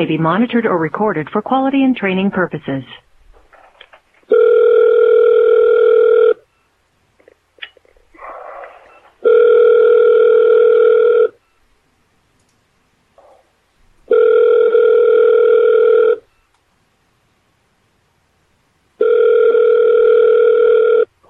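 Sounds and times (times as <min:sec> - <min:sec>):
speech: 0:00.0 - 0:03.0
phone line ringback tone while call connects: 0:04.3 - 0:06.4, 0:09.0 - 0:11.4, 0:14.1 - 0:16.3, 0:19.0 - 0:21.1.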